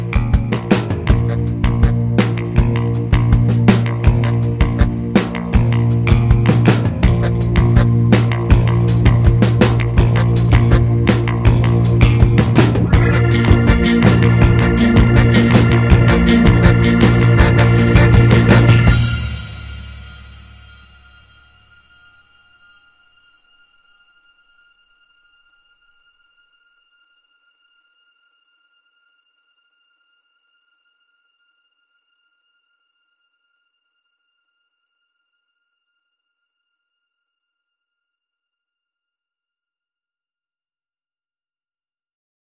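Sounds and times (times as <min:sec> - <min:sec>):
energetic dance music: 0:00.2 - 0:19.6.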